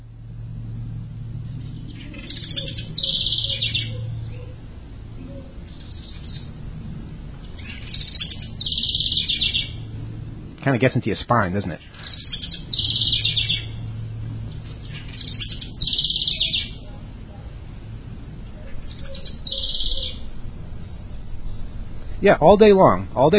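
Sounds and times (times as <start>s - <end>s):
low rumble of traffic or engine noise: 0.0s - 23.3s
bird calling in high bright bursts: 1.5s - 6.7s, 7.4s - 10.1s, 11.6s - 17.1s, 18.5s - 20.4s
speech: 10.7s - 12.2s, 22.2s - 23.3s.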